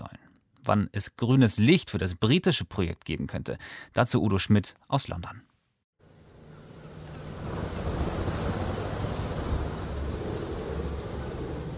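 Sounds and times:
speech: 0.7s - 5.5s
rough surf of the stormy sea between Northern Ireland and Scotland: 6.7s - 11.7s
gusting wind buffeting the microphone: 7.2s - 11.7s.

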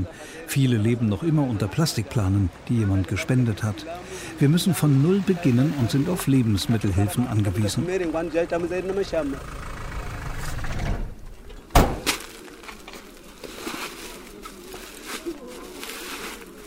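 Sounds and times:
speech: 0.0s - 9.8s
World Food Programme truck engine rumbling and idling in Mozambique: 3.6s - 12.0s.

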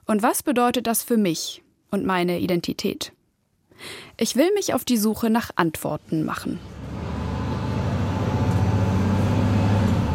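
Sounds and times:
speech: 0.1s - 3.2s, 3.8s - 6.8s
engine rumble inside a moving city bus: 6.6s - 10.1s
road noise inside a moving city bus: 6.6s - 10.1s.

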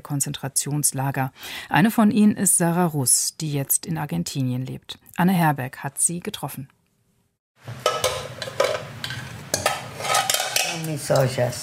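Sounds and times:
speech: 0.1s - 6.8s, 10.8s - 11.6s
dented metal pots clanking and scraping as they are handled and turned: 7.7s - 11.5s.

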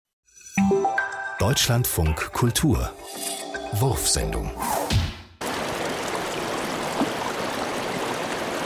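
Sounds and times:
speech: 0.6s - 5.0s
water trickling and bubbling: 5.4s - 8.6s.

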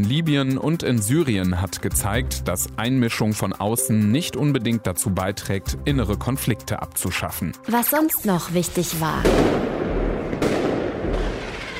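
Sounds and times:
speech: 0.0s - 9.8s
fireworks and firecrackers crackling: 8.9s - 11.7s
loud firework bursts: 9.2s - 11.7s.

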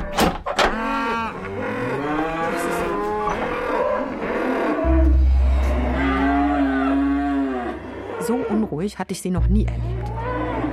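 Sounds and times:
hungry cows mooing: 0.6s - 8.8s, 9.8s - 10.7s
deep low rumble: 4.8s - 7.5s, 9.4s - 10.7s
speech: 8.8s - 10.1s.

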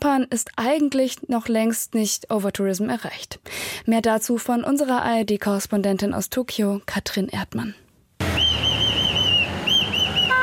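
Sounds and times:
speech: 0.1s - 7.8s
security guard blowing a whistle at a street crossing in a small Japanese town: 8.2s - 10.4s.

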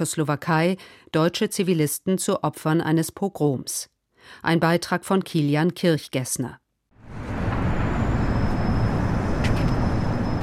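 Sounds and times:
speech: 0.0s - 7.2s
faint high tonal whine: 7.0s - 10.4s
vehicle traffic rolling across a cantilevered bridge over the Elbe in Ústí nad Labem: 7.0s - 10.4s.

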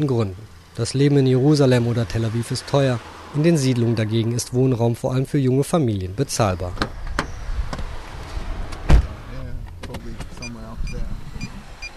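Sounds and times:
speech: 0.0s - 7.0s
car engine humming as the vehicle pulls away: 0.0s - 11.9s
car door slamming: 8.6s - 10.5s.

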